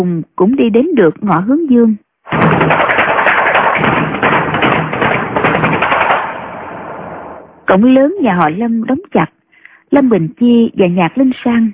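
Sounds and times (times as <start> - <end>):
speech: 0.0 - 4.4, 7.7 - 11.7
banging and kicking on a large wooden door: 2.3 - 6.6.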